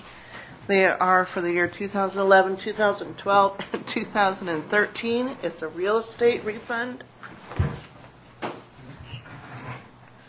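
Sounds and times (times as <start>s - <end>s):
speech: 0.7s - 7.6s
chair being shifted around: 7.3s - 10.0s.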